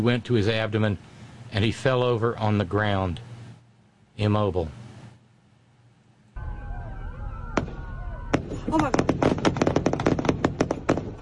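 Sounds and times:
speech: 0:00.0 - 0:03.3, 0:04.2 - 0:04.8
gunshot: 0:07.5 - 0:11.2.

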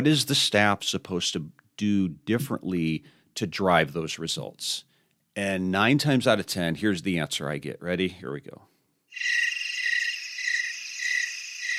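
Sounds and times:
speech: 0:00.0 - 0:09.5
crickets chirping: 0:09.1 - 0:11.7.

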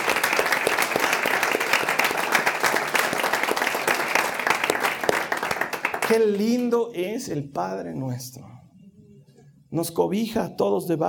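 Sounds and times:
large group clapping: 0:00.0 - 0:06.7
speech: 0:06.1 - 0:08.5, 0:09.7 - 0:11.0.

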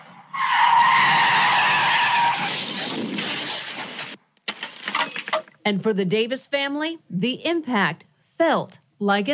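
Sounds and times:
car tires squealing as a car skids sideways after clipping two parked cars: 0:00.0 - 0:03.9
speech: 0:05.7 - 0:09.3.

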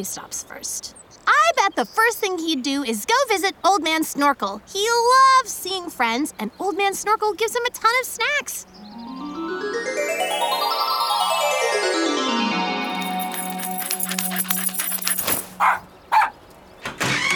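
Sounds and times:
speech: 0:00.0 - 0:01.0, 0:01.6 - 0:08.9
rising sliding tones: 0:08.8 - 0:14.1
busy clatter: 0:12.9 - 0:15.7
dog barking: 0:13.3 - 0:16.4.

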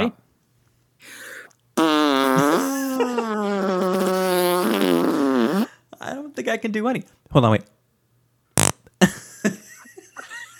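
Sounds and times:
person blowing a raspberry imitating a fart: 0:01.1 - 0:05.7, 0:08.6 - 0:08.9
speech: 0:06.4 - 0:07.7.

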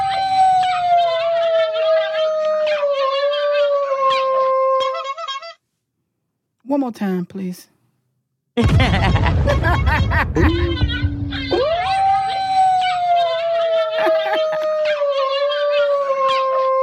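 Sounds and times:
dog howl sound effect: 0:00.0 - 0:05.6, 0:10.5 - 0:16.8
speech: 0:06.8 - 0:07.8, 0:08.6 - 0:10.9
laughter: 0:08.6 - 0:11.0, 0:13.6 - 0:14.8.

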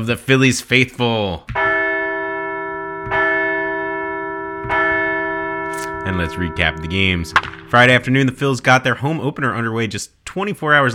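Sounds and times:
speech: 0:00.0 - 0:01.6, 0:06.1 - 0:10.9
large bell clanging: 0:01.6 - 0:09.1.

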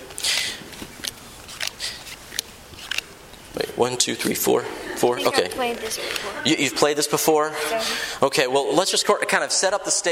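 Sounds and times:
playing cards dealt one at a time: 0:00.1 - 0:03.5
speech: 0:03.8 - 0:10.0.

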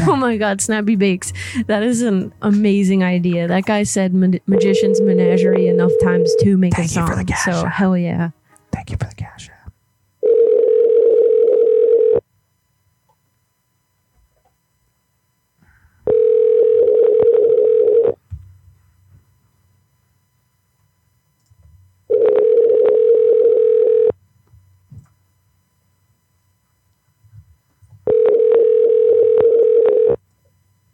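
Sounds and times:
speech: 0:00.1 - 0:09.5
ringing tone of an unanswered telephone call: 0:04.5 - 0:06.6, 0:10.2 - 0:12.3, 0:16.0 - 0:18.2, 0:22.1 - 0:24.2, 0:28.0 - 0:30.2.

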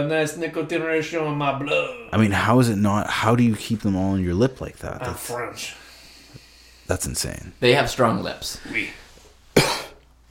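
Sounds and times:
speech: 0:00.0 - 0:05.8, 0:06.9 - 0:09.0
person coughing from cigarette smoke: 0:09.6 - 0:10.0.

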